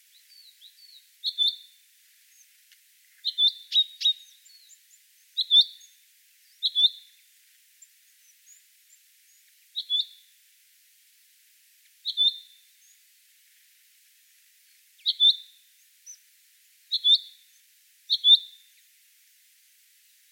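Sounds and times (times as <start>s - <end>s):
common chaffinch Fringilla coelebs calling: 0.3s - 1.7s, 3.2s - 7.2s, 9.8s - 10.2s, 12.0s - 13.0s, 15.0s - 15.5s, 16.9s - 18.7s.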